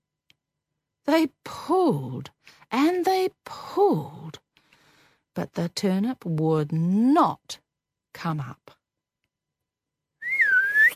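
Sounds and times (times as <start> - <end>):
speech: 1.0 - 4.2, 5.4 - 7.6, 8.2 - 8.8
human whistle to call a dog: 10.2 - 10.9.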